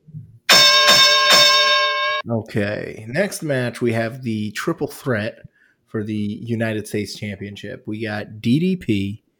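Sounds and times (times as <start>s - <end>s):
bright metallic bell clanging: 0.5s - 2.2s
speech: 2.3s - 9.2s.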